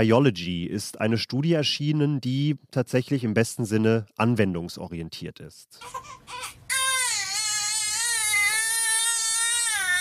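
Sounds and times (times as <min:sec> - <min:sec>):
speech: 0:00.0 - 0:06.6
baby crying: 0:05.8 - 0:09.9.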